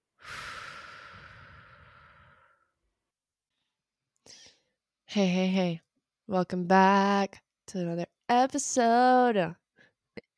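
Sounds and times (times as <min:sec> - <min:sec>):
deep breathing in and out during a breathing exercise: 0:00.2 - 0:02.8
speech: 0:05.2 - 0:09.6.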